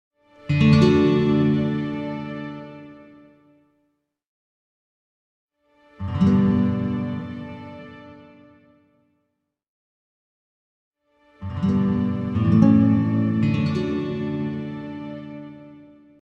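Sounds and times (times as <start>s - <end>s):
string pad: 0.4s - 3.3s, 5.9s - 8.6s, 11.3s - 16.0s
classical guitar chord strums: 0.5s - 2.8s, 6.0s - 8.4s, 11.4s - 15.7s.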